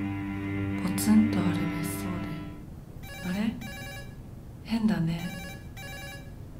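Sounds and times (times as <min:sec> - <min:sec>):
sustained musical tone: 0:00.0 - 0:02.9
speech: 0:01.0 - 0:01.7
telephone ringing with a bright electronic trill: 0:03.0 - 0:04.2, 0:05.2 - 0:06.4.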